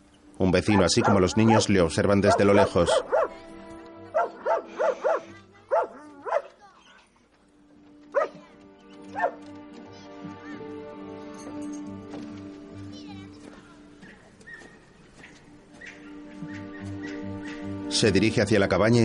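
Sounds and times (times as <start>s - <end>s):
steady musical background: 0.0s - 19.0s
speech: 0.5s - 3.4s, 18.0s - 19.0s
dog barking repeatedly at a jetty: 0.6s - 3.4s, 4.1s - 6.6s, 8.1s - 8.4s, 9.1s - 9.4s, 14.0s - 17.7s.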